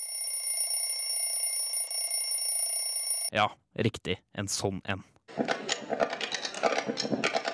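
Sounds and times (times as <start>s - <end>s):
fire alarm bell ringing: 0.0s - 3.3s
speech: 3.3s - 6.1s, 6.9s - 7.4s.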